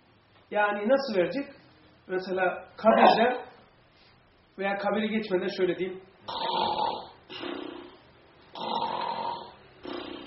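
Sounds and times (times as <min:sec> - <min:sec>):
speech: 0:00.5 - 0:03.5, 0:04.6 - 0:06.6
voice imitating snoring with rasping inhale and exhale: 0:06.3 - 0:10.2.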